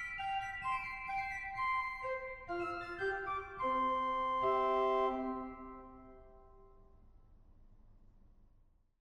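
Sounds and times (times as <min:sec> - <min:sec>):
organ playing: 0:00.2 - 0:06.5.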